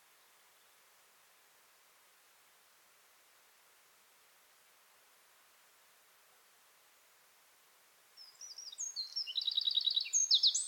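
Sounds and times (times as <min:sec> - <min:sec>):
Eurasian wren Troglodytes troglodytes singing: 0:08.2 - 0:10.6.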